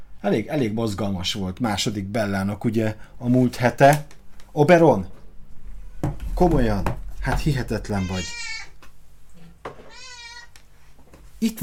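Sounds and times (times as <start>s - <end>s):
low steady hum: 0.0s - 11.4s
speech: 0.2s - 5.2s, 6.4s - 8.5s, 11.4s - 11.6s
cat meowing: 7.8s - 8.8s, 9.8s - 10.6s.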